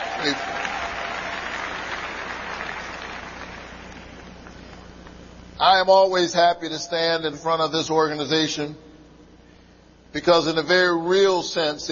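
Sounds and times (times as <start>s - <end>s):
large crowd applauding: 0.0s - 4.7s
speech: 0.2s - 0.6s, 5.6s - 8.9s, 10.1s - 11.9s.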